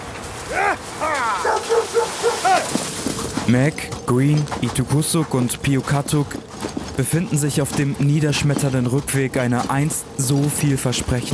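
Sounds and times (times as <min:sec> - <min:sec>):
sled dogs barking and yipping: 0:00.4 - 0:04.0
sled dogs whining: 0:00.6 - 0:02.9
speech: 0:03.5 - 0:11.3.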